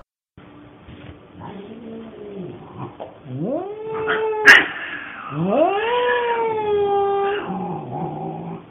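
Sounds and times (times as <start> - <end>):
cats growling low: 1.4 - 8.6
two cats yowling and caterwauling at night: 3.3 - 7.8.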